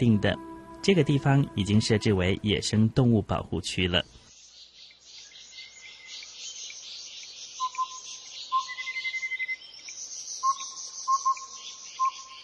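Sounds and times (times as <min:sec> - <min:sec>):
speech: 0:00.0 - 0:04.2
crisp melodious whistled birdsong at Fushan Botanical Garden in Yilan Taiwan: 0:04.0 - 0:12.4.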